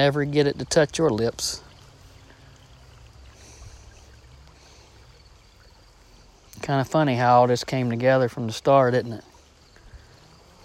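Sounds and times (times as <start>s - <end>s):
speech: 0.0s - 1.6s, 6.6s - 9.3s
flowing brook water with faint trickling: 0.0s - 10.6s.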